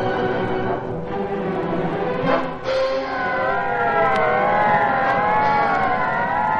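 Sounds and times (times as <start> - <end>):
police squad car sirens wailing during a gang roundup: 0.0 - 6.5
squad car engines rumbling: 0.0 - 6.5.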